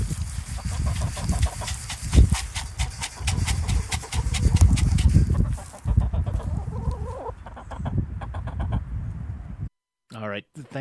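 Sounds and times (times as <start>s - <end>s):
low rustle of outdoor activity: 0.0s - 3.2s
backyard chickens clucking: 0.5s - 8.8s.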